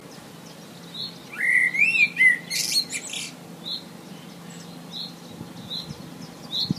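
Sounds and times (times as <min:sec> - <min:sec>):
low steady hum: 0:00.0 - 0:06.7
Common blackbird singing a mellow fluty warbled phrase: 0:00.1 - 0:06.7.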